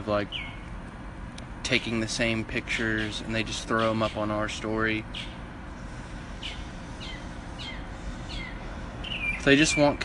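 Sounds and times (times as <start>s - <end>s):
speech: 0.0s - 0.6s, 1.6s - 5.4s, 9.4s - 10.0s
bird chirping call: 0.3s - 0.7s, 5.1s - 5.4s, 6.4s - 10.0s.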